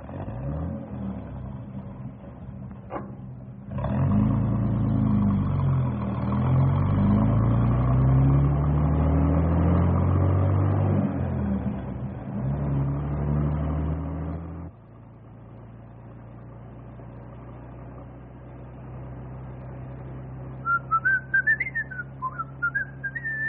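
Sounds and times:
bus motor revving and pulling away: 0.0 - 23.4
large bus engine idling with a low rumble: 1.2 - 3.8, 14.8 - 23.4
brief clunk: 2.7 - 3.5
person whistling a short wavering tune: 20.6 - 23.4.

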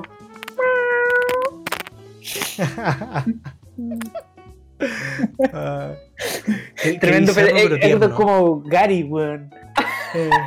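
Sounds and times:
person imitating a cat meow: 0.0 - 1.6
laughter: 2.4 - 3.5, 6.4 - 8.2, 9.8 - 10.4
speech: 2.6 - 10.4.

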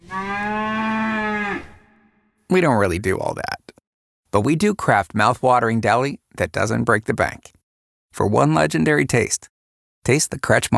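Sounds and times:
cow mooing: 0.0 - 2.2
speech: 2.5 - 3.6, 4.3 - 10.7.

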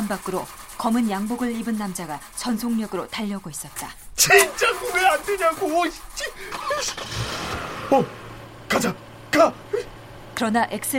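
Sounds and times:
speech: 0.1 - 10.9
car engine cranking: 4.4 - 10.3.

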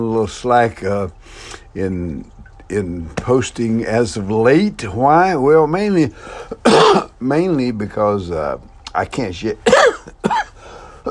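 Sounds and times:
speech: 0.0 - 10.0
man coughing with a lingering cough after a bad cold: 6.4 - 7.2, 9.6 - 11.0.

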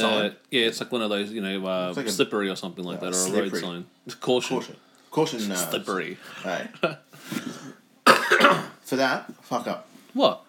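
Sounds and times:
speech: 0.0 - 7.6, 8.4 - 10.4
mumbled voiced sound: 2.8 - 3.7
person coughing: 7.4 - 8.8.

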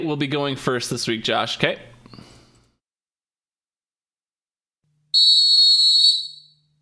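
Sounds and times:
speech: 0.0 - 1.9
shrill whistle blast: 5.2 - 6.6.

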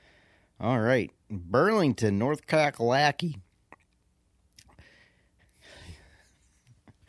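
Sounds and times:
speech: 0.6 - 3.5
gasping breaths after a strong vape hit: 4.7 - 6.4.

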